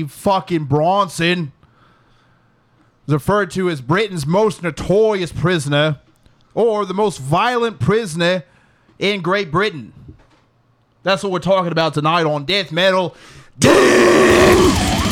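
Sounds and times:
speech: 0.0 - 1.6, 3.1 - 6.0, 6.6 - 10.0, 11.0 - 15.0
man yelling in a mock British accent: 13.6 - 14.8.

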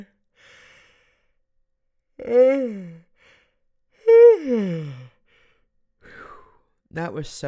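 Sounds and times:
person yawning: 2.2 - 3.0, 4.0 - 5.1
speech: 2.2 - 3.0, 4.4 - 5.0, 6.9 - 7.4.

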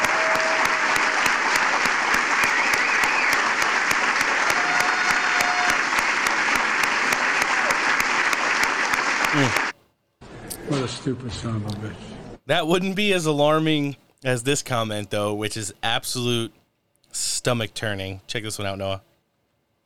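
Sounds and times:
faint crowd murmur: 0.0 - 9.7
large audience clapping: 0.0 - 9.8
speech: 11.0 - 19.1.

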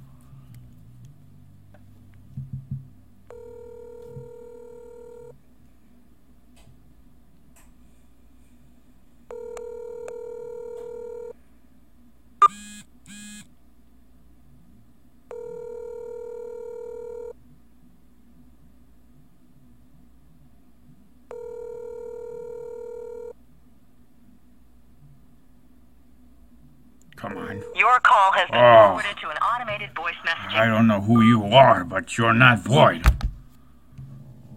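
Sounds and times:
telephone dialing tones: 3.3 - 5.3, 9.3 - 11.3, 15.3 - 17.3, 21.3 - 23.3
long two-tone telephone ringback tone: 3.3 - 5.4, 9.3 - 11.4, 15.3 - 17.4, 21.3 - 23.4, 27.2 - 30.6
speech: 27.5 - 33.2.

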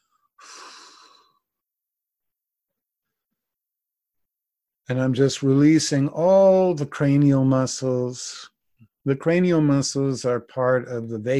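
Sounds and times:
slow exhale through the nose: 0.4 - 1.4
speech: 4.9 - 11.3.

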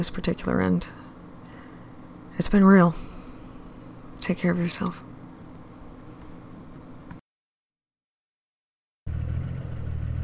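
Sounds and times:
speech: 0.0 - 1.0, 2.4 - 3.1, 4.2 - 5.1
car driving slowly, low engine and road rumble: 9.1 - 10.2.

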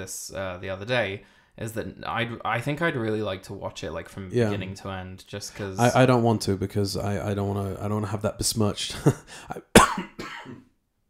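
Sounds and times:
speech: 0.0 - 10.6
sick person coughing harshly: 9.6 - 10.7.

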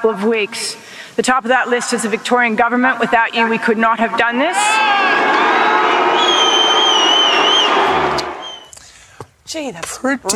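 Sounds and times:
speech: 0.0 - 6.3, 9.5 - 10.3
loud dense crowd roaring and shouting: 4.6 - 8.6
shrill whistles: 4.8 - 8.8.

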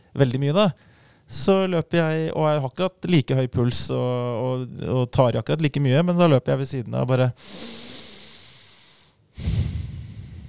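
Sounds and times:
speech: 0.2 - 7.9, 9.4 - 9.7
calm breathing through the nose: 7.4 - 10.4.

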